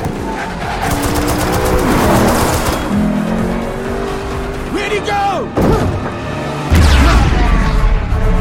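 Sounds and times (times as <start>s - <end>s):
tire noise: 0.0s - 7.0s
car engine roaring in a fast film chase scene: 0.0s - 8.3s.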